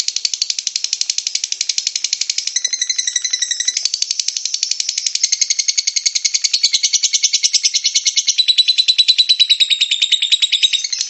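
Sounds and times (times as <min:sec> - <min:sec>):
lovebird ngekek song: 0:00.0 - 0:11.0.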